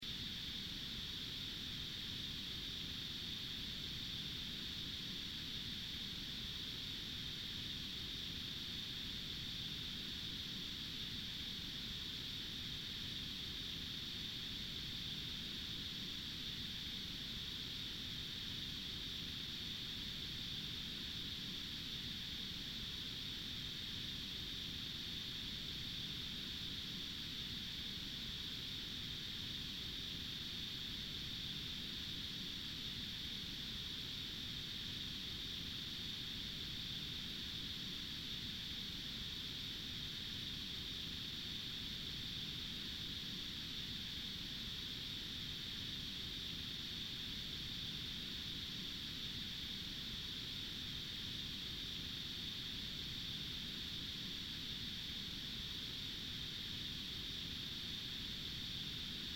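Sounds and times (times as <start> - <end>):
insects on a country road: 0.0 - 59.3.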